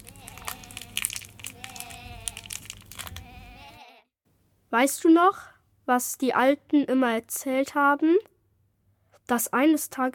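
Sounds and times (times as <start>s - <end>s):
small campfire crackling: 0.0s - 3.2s
speech: 4.7s - 8.3s, 9.3s - 10.1s.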